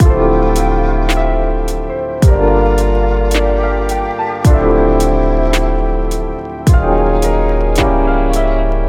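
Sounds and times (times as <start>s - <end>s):
lo-fi music track: 0.0s - 8.8s.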